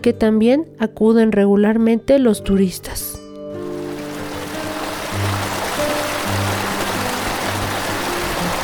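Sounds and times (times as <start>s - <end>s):
speech: 0.0s - 3.2s
river rushing beside a path to the canyon and waterfall of Oxochitlán: 3.6s - 8.6s.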